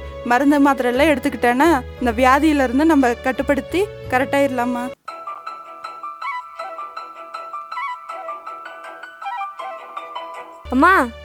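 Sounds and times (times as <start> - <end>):
speech: 0.2 - 5.0, 10.7 - 11.2
phone ringtone playing a repeating melodic tune: 5.1 - 11.0.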